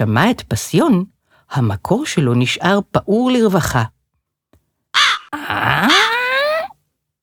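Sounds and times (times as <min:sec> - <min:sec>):
speech: 0:00.0 - 0:04.0
crow cawing: 0:05.0 - 0:06.3.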